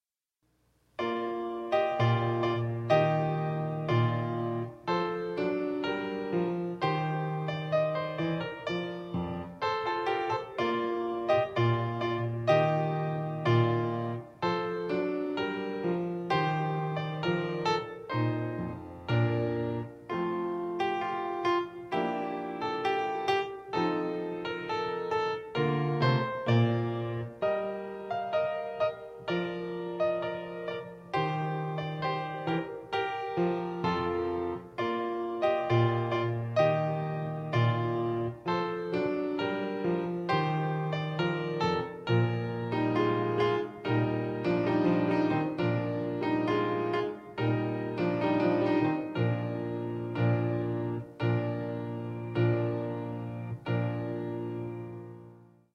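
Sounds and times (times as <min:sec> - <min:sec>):
piano chorale: 0:01.0 - 0:55.7.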